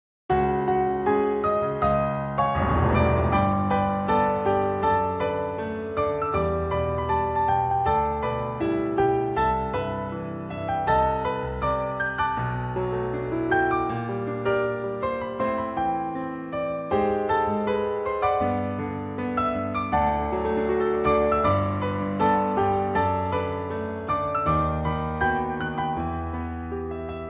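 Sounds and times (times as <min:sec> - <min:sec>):
piano: 0:00.3 - 0:27.2.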